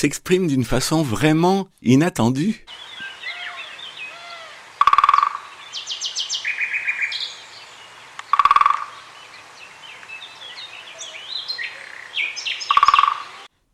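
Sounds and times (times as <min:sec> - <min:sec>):
speech: 0:00.0 - 0:03.0
birds chirping and singing: 0:02.7 - 0:13.5
great spotted woodpecker drumming: 0:02.7 - 0:13.6.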